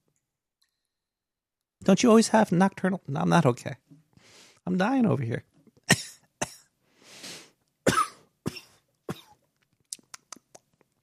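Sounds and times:
speech: 0:01.8 - 0:03.8, 0:04.6 - 0:05.5
person coughing into a microphone: 0:05.9 - 0:06.7, 0:07.9 - 0:09.4.

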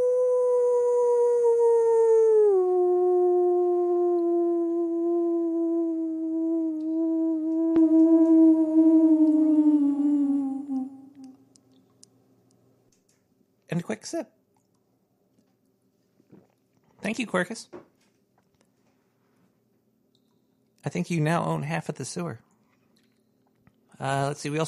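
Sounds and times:
person imitating a wolf howl: 0:00.0 - 0:11.4
speech: 0:14.0 - 0:14.4, 0:17.1 - 0:17.8, 0:20.9 - 0:22.5, 0:24.0 - 0:24.6.

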